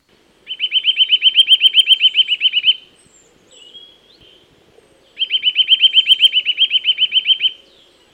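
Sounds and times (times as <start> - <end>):
faint birdsong: 0.0 - 8.1
Eurasian nuthatch singing whistled trills: 0.5 - 2.8, 5.2 - 7.9.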